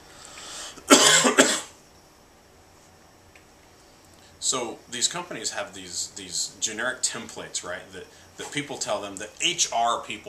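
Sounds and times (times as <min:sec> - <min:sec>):
coughing into microphone: 0:00.8 - 0:01.8
speech: 0:04.4 - 0:10.2.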